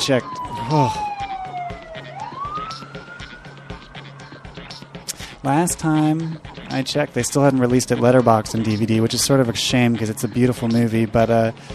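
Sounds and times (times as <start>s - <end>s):
speech: 0.0s - 1.1s, 5.4s - 11.7s
police car siren passing by: 0.0s - 4.9s.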